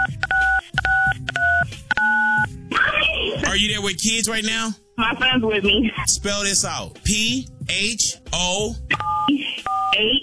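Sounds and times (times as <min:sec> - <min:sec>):
telephone keypad dialing tones: 0:00.0 - 0:02.5, 0:09.0 - 0:10.2
speech: 0:03.6 - 0:10.2.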